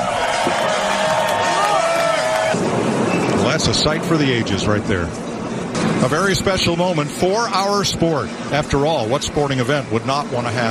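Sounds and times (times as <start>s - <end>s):
large crowd roaring and cheering: 0.0s - 2.7s
speech: 3.6s - 5.3s, 6.0s - 10.6s.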